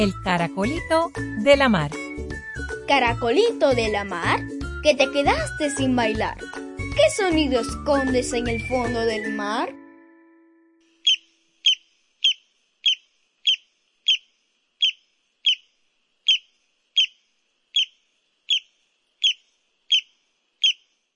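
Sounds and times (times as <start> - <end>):
speech: 0.0 - 9.8
barrancolí chip calls: 11.0 - 21.0.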